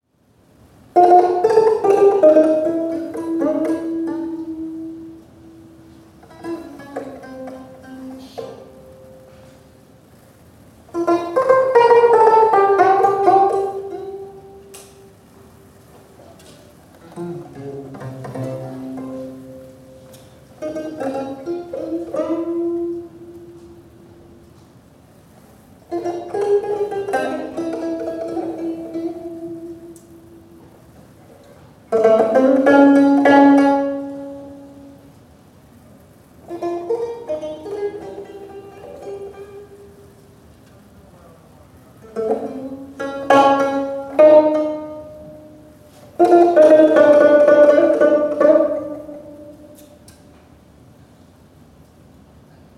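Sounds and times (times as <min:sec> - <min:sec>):
unaccompanied gayageum Korean plucked string zither playing sanjo: 0:01.0 - 0:09.8, 0:10.9 - 0:15.2, 0:17.0 - 0:24.4, 0:25.9 - 0:30.7, 0:31.9 - 0:35.1, 0:36.4 - 0:40.2, 0:42.0 - 0:50.2.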